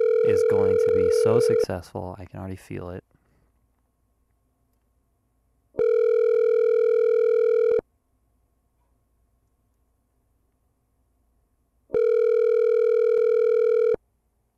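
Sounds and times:
telephone tone during an outgoing call: 0:00.0 - 0:01.8, 0:05.8 - 0:07.8, 0:11.9 - 0:14.0
speech: 0:00.4 - 0:03.1.

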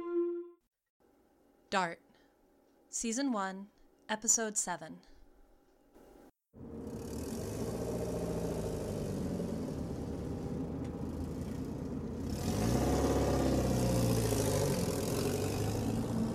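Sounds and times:
speech: 0:02.9 - 0:05.1
car engine idling and revving: 0:06.6 - 0:16.3.

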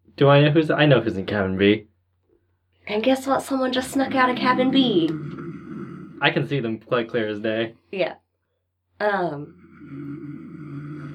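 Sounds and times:
speech: 0:00.2 - 0:01.9, 0:02.9 - 0:05.4, 0:06.2 - 0:08.2, 0:09.0 - 0:10.3
person imitating snoring: 0:03.7 - 0:06.7, 0:09.3 - 0:11.1.

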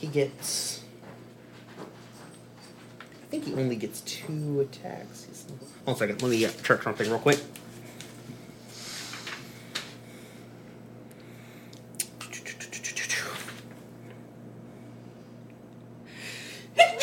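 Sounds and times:
speech: 0:00.0 - 0:00.7, 0:03.3 - 0:07.7
low steady hum: 0:00.0 - 0:17.0
person sneezing: 0:16.8 - 0:17.0.

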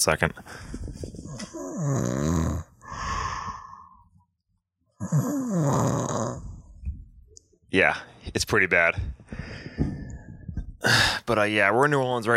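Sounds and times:
speech: 0:00.0 - 0:01.0, 0:01.8 - 0:02.7, 0:07.8 - 0:10.0, 0:10.8 - 0:12.3
man snoring loudly while asleep: 0:01.4 - 0:03.8, 0:05.0 - 0:06.7
breathy exhale: 0:02.8 - 0:04.1, 0:09.3 - 0:11.2.

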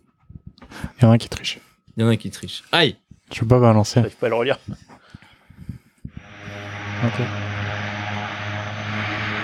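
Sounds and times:
speech: 0:01.0 - 0:04.9, 0:07.0 - 0:07.4
old propeller airplane engine droning: 0:06.1 - 0:09.4.

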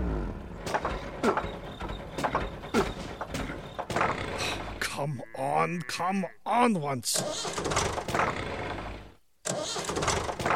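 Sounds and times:
tractor engine cranking, trying to start: 0:00.0 - 0:05.0, 0:07.1 - 0:10.5
speech: 0:05.6 - 0:08.5.

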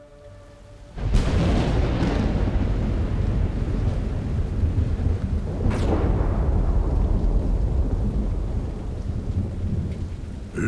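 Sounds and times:
steady heavy rain: 0:00.6 - 0:10.6
deep rolling thunder: 0:01.0 - 0:10.5.

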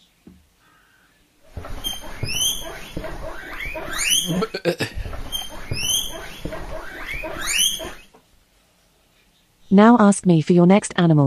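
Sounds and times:
guinea pig squeaking and wheeking: 0:01.5 - 0:08.1
guinea pig soft chattering: 0:01.9 - 0:06.4
speech: 0:04.3 - 0:05.0, 0:09.7 - 0:11.2.

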